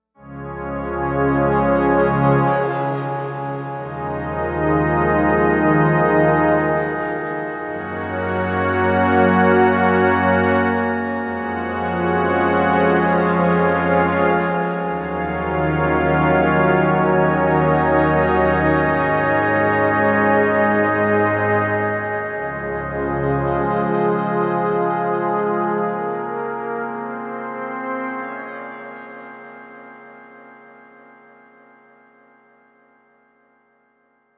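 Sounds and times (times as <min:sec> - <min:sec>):
stretched pad on a Novation UltraNova synthesizer: 0:00.3 - 0:30.8.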